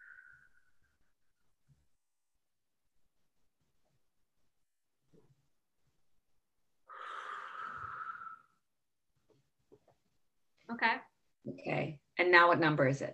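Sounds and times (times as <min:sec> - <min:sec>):
deep breath: 0:06.9 - 0:08.6
speech: 0:10.7 - 0:13.1.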